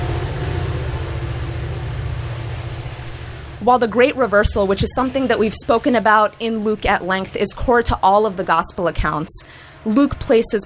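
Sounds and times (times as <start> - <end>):
heavy rumble of a passing train: 0.0 - 10.6
speech: 3.6 - 10.6.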